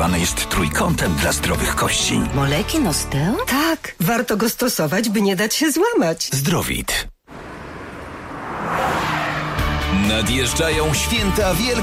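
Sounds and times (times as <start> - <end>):
speech: 0.1 - 7.1, 10.1 - 11.8
Honda HR-V with 1.5 turbo engine driving past: 7.3 - 11.0.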